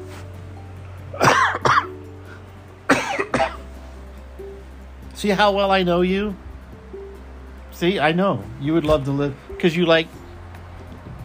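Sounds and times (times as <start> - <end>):
low steady hum: 0.0 - 11.2
person coughing close to the microphone: 1.2 - 2.0, 2.9 - 3.6
speech: 5.2 - 6.4, 7.8 - 10.2.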